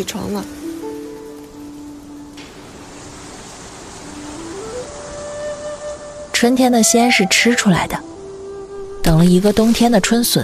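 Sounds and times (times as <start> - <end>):
speech: 0.0 - 0.6, 6.4 - 8.1, 9.1 - 10.4
steady rain in the early morning: 0.0 - 10.4
thin tonal whistles: 4.0 - 10.0.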